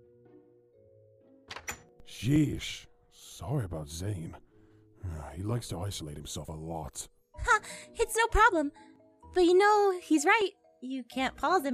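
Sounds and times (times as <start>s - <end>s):
door shutting with a solid double thud: 1.5s - 2.0s
speech: 2.1s - 11.7s.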